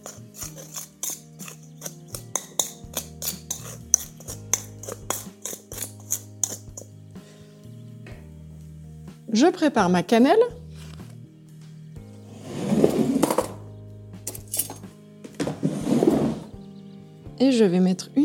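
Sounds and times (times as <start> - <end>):
sugar and flour being mixed together for a crumble: 0.0 - 6.9, 12.3 - 13.6, 15.5 - 16.6
speech: 9.4 - 10.6, 17.4 - 18.2.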